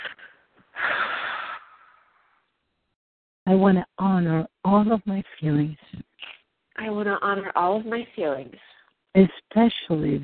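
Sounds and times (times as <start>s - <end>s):
deep breath blown out through the mouth: 0.0s - 2.2s
speech: 3.5s - 10.2s.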